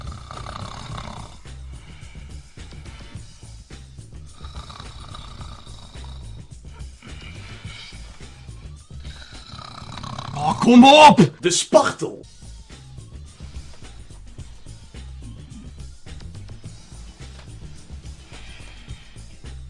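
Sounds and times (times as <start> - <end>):
voice imitating loud rasping snoring: 0.0 - 3.6, 4.2 - 11.1, 15.0 - 16.1
speech: 10.5 - 12.3.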